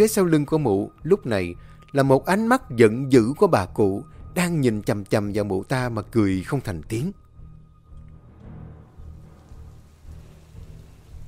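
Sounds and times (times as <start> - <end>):
speech: 0.0 - 7.2
deep rolls of thunder: 8.8 - 11.2
heavy rain pouring in a thunderstorm: 8.8 - 11.2.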